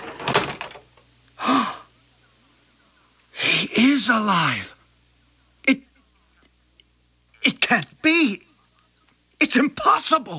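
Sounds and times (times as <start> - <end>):
door creaking open: 0.0 - 0.9
speech: 4.0 - 4.7, 7.4 - 8.4, 9.4 - 10.3.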